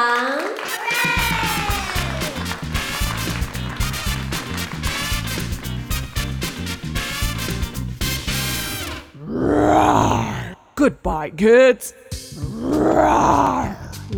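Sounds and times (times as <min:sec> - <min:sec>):
bouncy music: 0:01.1 - 0:09.0
lion roaring: 0:09.2 - 0:10.8, 0:12.4 - 0:14.1
speech: 0:11.0 - 0:12.0, 0:12.6 - 0:14.1.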